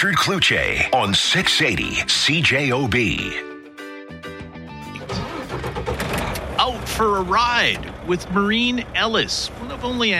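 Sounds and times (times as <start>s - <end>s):
speech: 0.0s - 3.5s, 7.0s - 10.1s
big vehicle engine starting: 4.9s - 6.6s.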